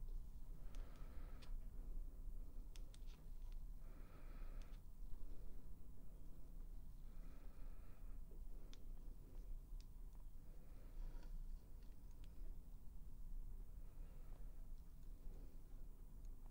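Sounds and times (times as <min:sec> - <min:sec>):
steady low hum: 0:00.0 - 0:16.5.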